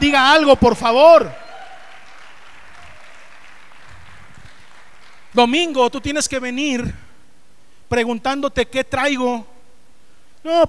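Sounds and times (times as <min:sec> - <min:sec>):
crowd applauding: 0:00.0 - 0:06.3
speech: 0:00.2 - 0:01.4, 0:05.4 - 0:07.1, 0:07.9 - 0:09.5, 0:10.4 - 0:10.6.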